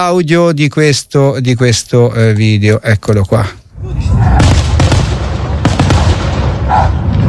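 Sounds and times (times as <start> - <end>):
speech: 0.0 - 4.5
loud fireworks bursting over a small field: 4.4 - 7.2.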